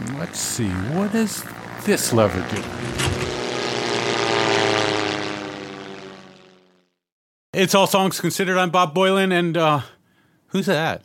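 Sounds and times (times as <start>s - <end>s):
propeller airplane engine droning: 0.0s - 7.1s
speech: 0.2s - 3.2s, 7.6s - 11.0s.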